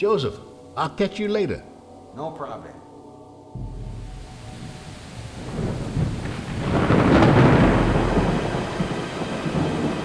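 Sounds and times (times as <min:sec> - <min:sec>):
speech: 0:00.0 - 0:02.8
deep rumble of thunder: 0:03.6 - 0:10.0
steady rain: 0:03.6 - 0:10.0.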